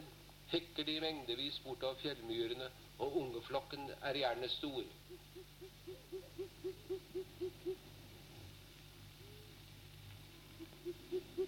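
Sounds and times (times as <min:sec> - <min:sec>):
speech: 0:00.5 - 0:06.0
short-eared owl giving low hoots: 0:04.8 - 0:07.9, 0:09.1 - 0:09.6, 0:10.3 - 0:11.4.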